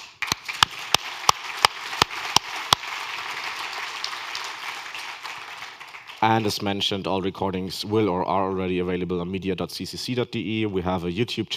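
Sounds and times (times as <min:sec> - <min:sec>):
conference audience applauding: 0:00.0 - 0:06.6
sharp loud claps: 0:00.0 - 0:06.7
speech: 0:06.2 - 0:11.5.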